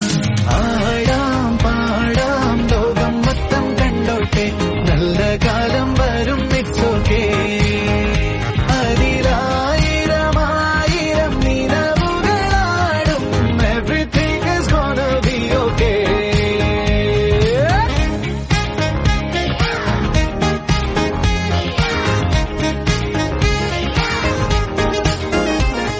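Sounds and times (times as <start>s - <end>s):
Malayalam song: 0.0s - 25.9s.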